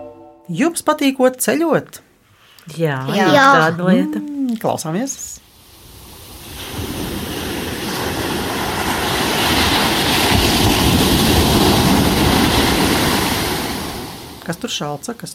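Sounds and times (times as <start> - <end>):
speech: 0.5 - 5.4, 14.5 - 15.3
surf washing ashore: 5.5 - 14.6
wind noise: 5.8 - 13.3.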